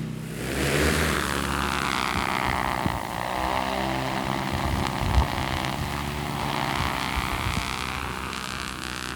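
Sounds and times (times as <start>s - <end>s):
large drone propellers whirring during launch: 0.0s - 9.1s.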